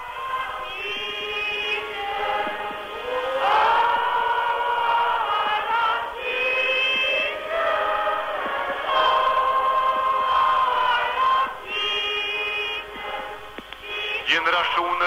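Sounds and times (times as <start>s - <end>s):
audience singing at a thanksgiving service in a township church in Cape Town: 0.0s - 15.0s.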